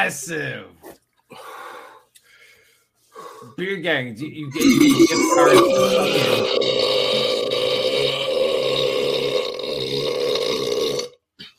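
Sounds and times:
speech: 0:00.0 - 0:01.5, 0:03.4 - 0:07.4
long loud burp: 0:04.6 - 0:11.2.

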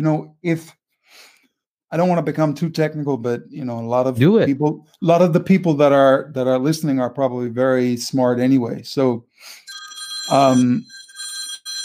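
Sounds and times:
speech: 0:00.0 - 0:01.3, 0:01.9 - 0:09.6, 0:10.3 - 0:11.0
mobile phone ringtone: 0:09.6 - 0:11.8.

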